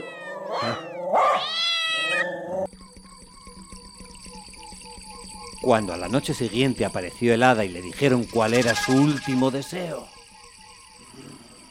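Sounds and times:
cat meowing and caterwauling: 0.0s - 2.7s
speech: 5.7s - 10.2s.

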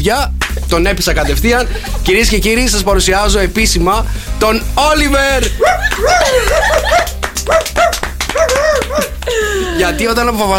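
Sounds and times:
speech: 0.0s - 10.5s
laughter: 0.6s - 2.8s, 5.3s - 10.3s
kokoni and beagle mix dog barking in high yips: 5.6s - 9.2s.

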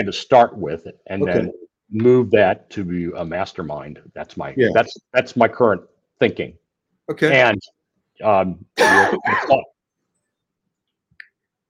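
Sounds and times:
speech: 0.0s - 9.7s
person coughing roughly: 1.2s - 1.5s, 8.8s - 9.7s.

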